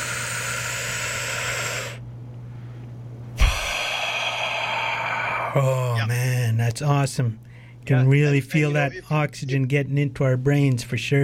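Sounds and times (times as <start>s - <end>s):
long airy breath out during a guided deep-breathing relaxation exercise: 0.0s - 2.0s, 3.4s - 5.8s
speech: 5.5s - 11.2s.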